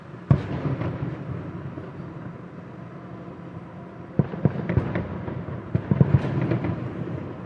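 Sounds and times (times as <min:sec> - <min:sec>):
fireworks popping and crackling outside in Bogotá: 0:00.3 - 0:02.4, 0:04.2 - 0:07.4.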